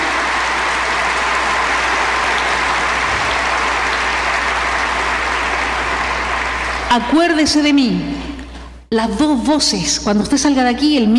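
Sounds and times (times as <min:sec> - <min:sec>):
crowd applauding: 0:00.0 - 0:07.0
speech: 0:06.9 - 0:08.2, 0:08.9 - 0:11.1.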